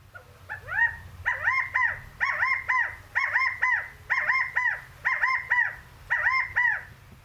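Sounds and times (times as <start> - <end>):
California quail rally call: 0.1 - 6.9.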